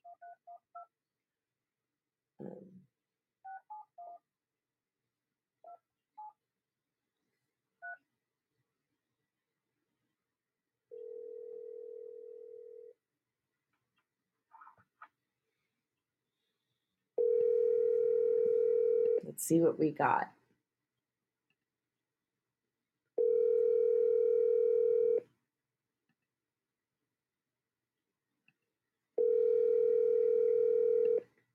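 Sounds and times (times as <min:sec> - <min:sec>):
telephone dial tone: 0:10.9 - 0:12.9, 0:17.2 - 0:19.2, 0:23.2 - 0:25.2, 0:29.2 - 0:31.2
speech: 0:19.4 - 0:20.4.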